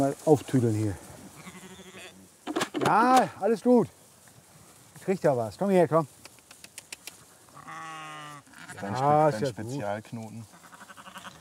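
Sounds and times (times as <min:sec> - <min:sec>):
speech: 0:00.0 - 0:01.1, 0:02.8 - 0:04.0, 0:05.0 - 0:06.2, 0:08.8 - 0:10.5
Shropshire sheep bleating: 0:01.3 - 0:02.2, 0:07.5 - 0:09.9, 0:10.5 - 0:11.3
sharp clicks: 0:06.2 - 0:07.2.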